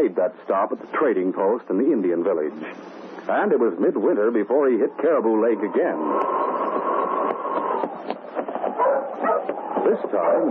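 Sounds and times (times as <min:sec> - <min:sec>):
speech: 0:00.0 - 0:06.6, 0:09.8 - 0:10.4
team of sled dogs barking and yipping: 0:06.2 - 0:10.4.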